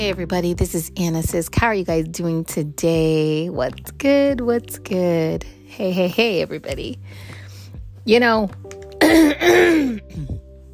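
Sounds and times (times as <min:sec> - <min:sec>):
speech: 0:00.0 - 0:07.4, 0:08.0 - 0:10.4
person clearing throat: 0:09.0 - 0:10.5.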